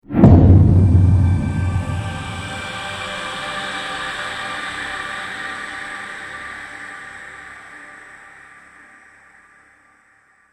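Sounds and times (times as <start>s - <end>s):
trailer hit: 0.1s - 3.0s.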